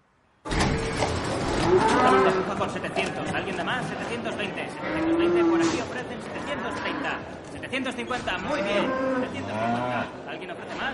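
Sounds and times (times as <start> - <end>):
speech: 1.0 - 10.9
cow mooing at a livestock auction: 1.6 - 2.5, 4.7 - 7.2, 8.5 - 10.2.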